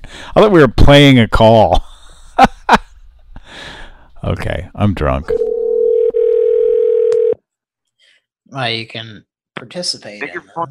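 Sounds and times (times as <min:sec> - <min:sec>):
speech: 0:00.4 - 0:02.8, 0:04.2 - 0:05.6, 0:08.5 - 0:10.7
telephone dial tone: 0:05.4 - 0:07.4.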